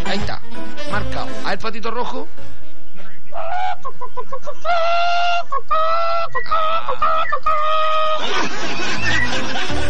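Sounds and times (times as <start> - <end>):
speech: 0.1 - 0.4, 1.0 - 2.6, 3.4 - 9.8
person imitating chicken clucking and cackling at an animal imitation contest: 3.3 - 8.2
laughter: 7.9 - 9.8.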